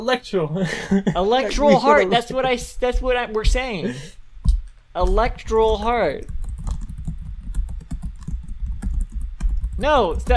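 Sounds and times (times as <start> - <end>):
speech: 0.0 - 4.2, 5.0 - 6.4, 9.8 - 10.3
typing on a computer keyboard: 5.1 - 10.3.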